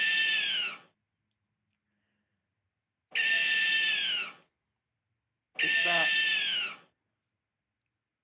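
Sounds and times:
owl screeches: 0:00.0 - 0:00.9, 0:03.2 - 0:04.5, 0:05.6 - 0:06.9.

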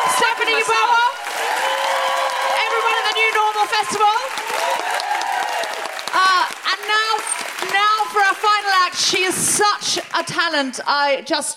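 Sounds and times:
cheers and whoops: 0:00.0 - 0:06.5
large audience clapping: 0:00.0 - 0:10.8
speech: 0:00.2 - 0:01.6, 0:03.2 - 0:04.9, 0:06.4 - 0:11.5.

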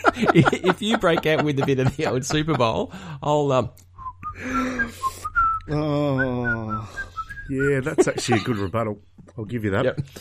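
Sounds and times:
laughter: 0:00.0 - 0:02.9, 0:07.7 - 0:08.8
speech: 0:00.1 - 0:05.1, 0:05.7 - 0:10.1
person whistling a short melodic tune: 0:04.0 - 0:07.8.

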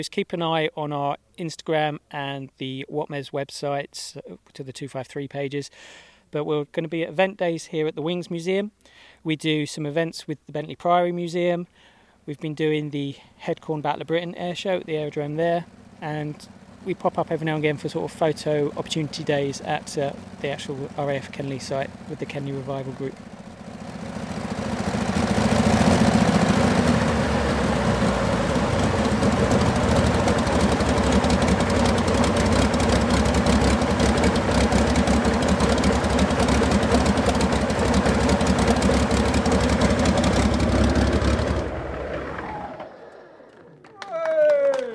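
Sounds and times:
speech: 0:00.0 - 0:23.3
Rolls-Royce Merlin aircraft engine roaring: 0:15.6 - 0:43.8.

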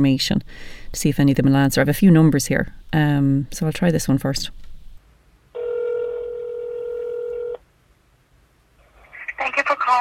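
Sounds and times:
speech: 0:00.0 - 0:04.6
quiet hiss: 0:00.0 - 0:09.9
steady telephone tone of a call to a urology clinic: 0:05.6 - 0:07.6.

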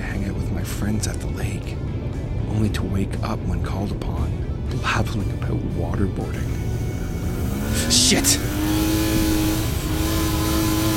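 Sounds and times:
speech: 0:00.8 - 0:06.6, 0:07.8 - 0:09.4
car engine revving and accelerating on a long country road: 0:06.3 - 0:10.9.

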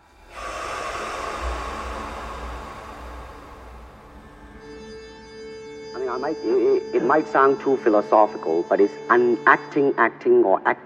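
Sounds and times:
deep breath in through nose: 0:00.0 - 0:04.3
soft exhale: 0:00.0 - 0:04.8
faint steady hum: 0:00.0 - 0:05.3
speech: 0:06.1 - 0:10.8.

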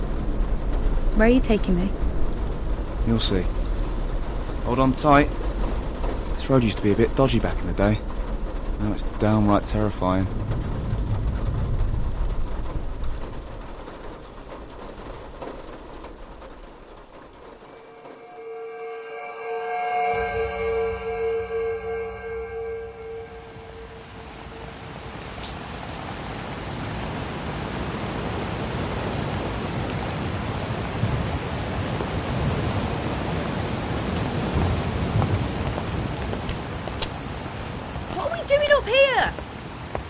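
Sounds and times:
heavy rain pouring: 0:00.0 - 0:18.9, 0:20.9 - 0:40.0
speech: 0:01.2 - 0:02.0, 0:03.1 - 0:03.6, 0:04.7 - 0:05.4, 0:06.4 - 0:08.1, 0:08.8 - 0:10.7
brief humming tone: 0:17.7 - 0:24.8.

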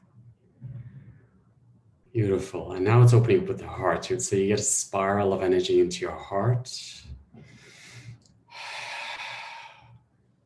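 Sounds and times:
speech: 0:02.2 - 0:07.1
deep breath exhaled through the mouth: 0:07.4 - 0:10.1.

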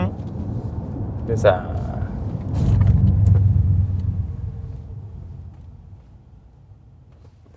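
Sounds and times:
road rumble inside an electric SUV braking to a stop: 0:00.0 - 0:07.5
speech: 0:01.3 - 0:01.9.

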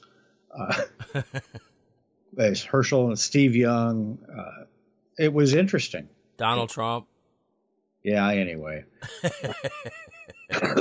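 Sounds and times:
harsh raspy cough: 0:00.6 - 0:01.5, 0:09.0 - 0:10.7
laugh-like bursts from a voice: 0:00.6 - 0:01.6, 0:06.4 - 0:07.0, 0:09.0 - 0:10.7
speech: 0:00.6 - 0:01.6, 0:02.4 - 0:04.5, 0:05.2 - 0:07.1, 0:08.0 - 0:10.7.

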